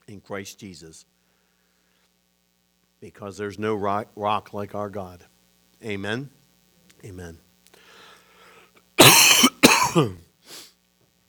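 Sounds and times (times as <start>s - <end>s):
speech: 0.1s - 1.2s, 3.0s - 6.4s, 7.0s - 7.4s, 10.0s - 10.6s
person in a harsh coughing fit: 9.0s - 10.2s.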